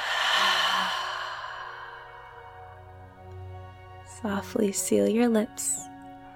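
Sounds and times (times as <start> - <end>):
long loud exhale during a guided meditation breathing exercise: 0.0 - 3.0
speech: 4.2 - 5.9.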